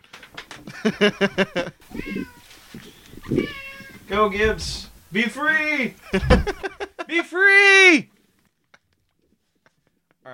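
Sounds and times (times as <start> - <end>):
laughter: 0.7 - 2.2, 6.0 - 7.4
speech: 0.7 - 8.1
cat meowing insistently to get out: 1.8 - 4.9.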